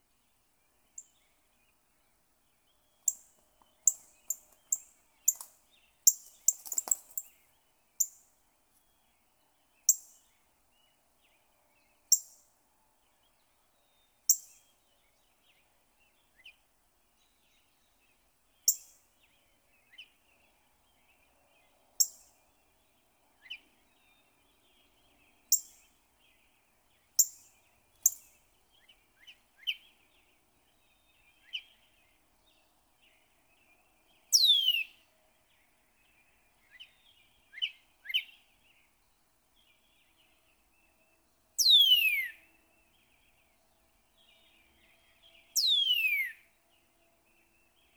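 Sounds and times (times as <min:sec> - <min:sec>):
Northern Cardinals awaking: 0:00.0 - 0:47.9.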